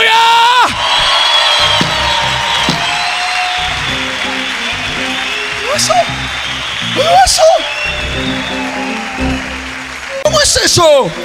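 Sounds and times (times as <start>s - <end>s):
whoops and whistles from the crowd: 0.6s - 3.7s, 4.7s - 9.6s
audience applauding: 0.6s - 11.2s
speech: 10.6s - 11.2s.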